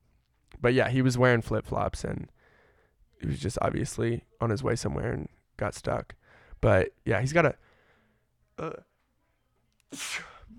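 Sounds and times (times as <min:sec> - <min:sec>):
speech: 0:00.6 - 0:02.4, 0:03.2 - 0:07.7, 0:08.6 - 0:08.9, 0:09.9 - 0:10.3
quiet breath intake before sneeze: 0:02.3 - 0:03.2, 0:06.2 - 0:06.6, 0:07.6 - 0:08.4
violent forceful sneeze: 0:09.9 - 0:10.5.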